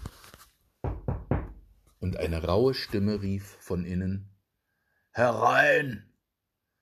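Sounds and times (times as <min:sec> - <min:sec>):
firm knocking on a wooden door: 0:00.8 - 0:01.7
speech: 0:02.0 - 0:04.3, 0:05.2 - 0:06.1.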